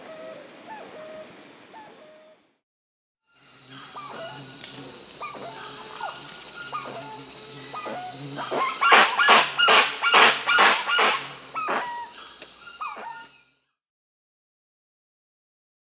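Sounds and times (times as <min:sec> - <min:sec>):
Spix's guan giving loud harsh honking calls in Peru: 0:03.7 - 0:12.2.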